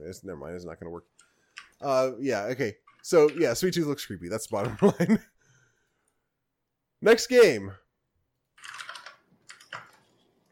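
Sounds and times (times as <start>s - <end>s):
speech: 0.1s - 5.3s, 7.0s - 7.8s
typing on a computer keyboard: 8.6s - 9.9s.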